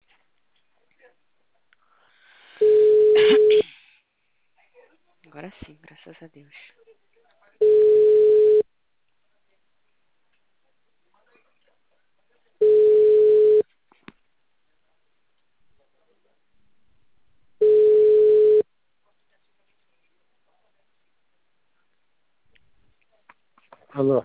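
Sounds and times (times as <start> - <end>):
telephone tone after a dropped call: 2.6 - 3.6, 7.6 - 8.6, 12.6 - 13.6, 17.6 - 18.6
speech: 5.4 - 6.8, 24.0 - 24.2.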